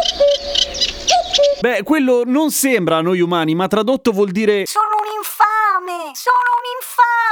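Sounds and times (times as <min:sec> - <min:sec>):
birdsong with chirps and tweets: 0:00.0 - 0:01.6
common cuckoo calling: 0:00.0 - 0:01.6
speech: 0:01.6 - 0:07.3.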